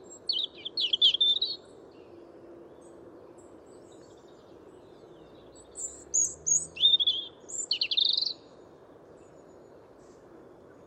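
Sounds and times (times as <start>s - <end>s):
European robin song: 0.0s - 2.1s, 3.7s - 8.6s.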